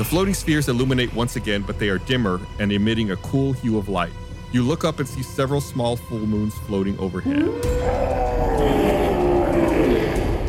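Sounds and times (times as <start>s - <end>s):
speech: 0.0s - 9.0s
bear, tiger and wolf snarling and growling: 7.3s - 10.4s
drawn-out howl sliding downward: 7.3s - 10.4s.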